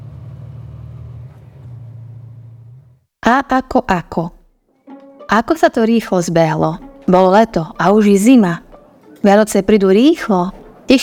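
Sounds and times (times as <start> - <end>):
car engine rumbling with low droning note: 0.0 - 3.1
speech: 3.3 - 4.4, 5.3 - 8.6, 9.2 - 11.0.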